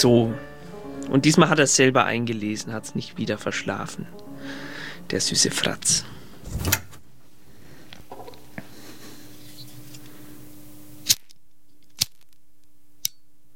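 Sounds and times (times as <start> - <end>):
speech: 0.0 - 0.5, 1.1 - 6.8
lighter clicking and igniting: 9.8 - 13.2
crisp clicks: 11.0 - 13.2.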